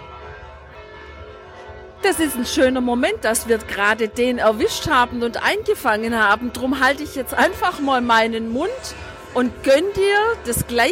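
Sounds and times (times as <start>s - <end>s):
many church bells ringing together: 0.0s - 6.4s
speech: 2.0s - 10.9s.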